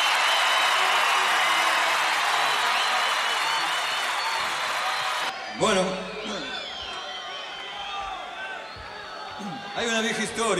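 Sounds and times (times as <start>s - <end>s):
large audience applause: 0.0s - 8.0s
speech: 5.6s - 5.9s, 9.8s - 10.5s.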